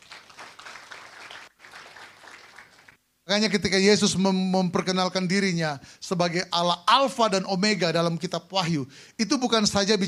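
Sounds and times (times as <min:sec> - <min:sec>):
audience applauding: 0:00.0 - 0:03.0
speech: 0:03.3 - 0:10.0.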